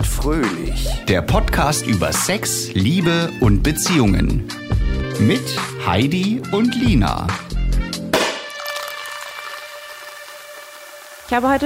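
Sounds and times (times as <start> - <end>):
speech: 0.2 - 4.6, 5.2 - 7.5, 11.3 - 11.6
cork popping from a bottle of well-chilled Crémant sparkling wine: 8.1 - 11.1
sparkling wine fizzing hiss: 8.6 - 11.6.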